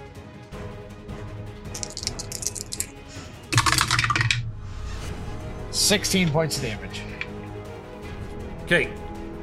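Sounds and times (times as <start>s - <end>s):
dice clattering across a hard floor: 1.7s - 2.9s, 3.5s - 4.4s
speech: 5.9s - 7.1s, 8.7s - 9.0s.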